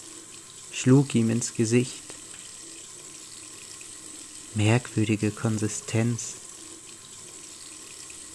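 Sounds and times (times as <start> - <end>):
cold tap water running over hands: 0.0 - 8.3
speech: 0.8 - 2.2, 4.6 - 6.4.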